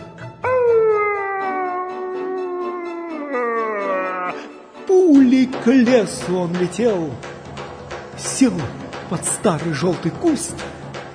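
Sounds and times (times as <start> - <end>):
wolf howling in pain after being struck with an oven fork: 0.4 - 4.5
speech: 5.6 - 7.3, 8.2 - 10.8.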